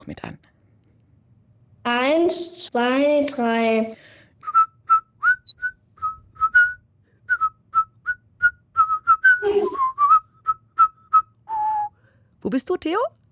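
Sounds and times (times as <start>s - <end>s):
speech: 0.1s - 0.4s, 1.9s - 4.1s, 12.5s - 13.2s
person whistling a tune: 4.4s - 12.0s.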